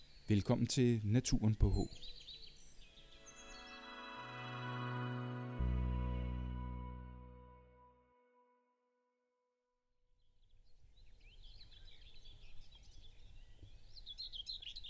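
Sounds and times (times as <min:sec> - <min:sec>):
common whitethroat singing: 0:00.0 - 0:06.0, 0:11.0 - 0:14.8
faint outdoor background: 0:00.0 - 0:14.8
speech: 0:00.3 - 0:02.2
sustained musical tones: 0:03.2 - 0:08.5.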